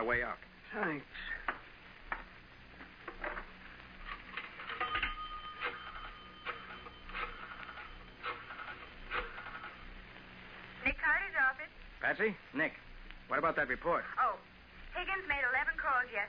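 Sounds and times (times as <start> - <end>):
speech: 0.0 - 1.5, 11.5 - 16.2
telephone being dialed with mechanical clicks and whirs: 4.1 - 9.7.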